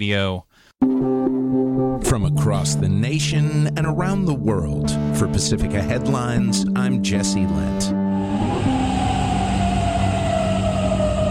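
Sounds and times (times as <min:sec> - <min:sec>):
speech: 0:00.0 - 0:01.3, 0:02.0 - 0:08.8
air raid sirens wailing across a city: 0:07.9 - 0:11.2
steady lower drone: 0:07.9 - 0:11.2
dense rumble: 0:08.1 - 0:11.2.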